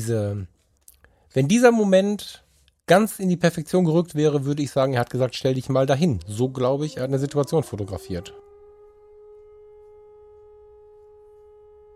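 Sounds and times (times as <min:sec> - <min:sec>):
speech: 0:00.0 - 0:00.6, 0:01.3 - 0:08.5
civil defense siren wailing: 0:06.1 - 0:11.9.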